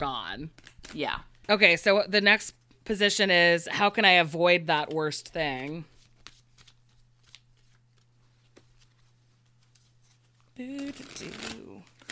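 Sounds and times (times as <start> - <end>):
speech: 0.0 - 5.9, 10.6 - 11.6
tarot cards being shuffled with riffling and sliding: 0.4 - 1.5, 4.9 - 12.1.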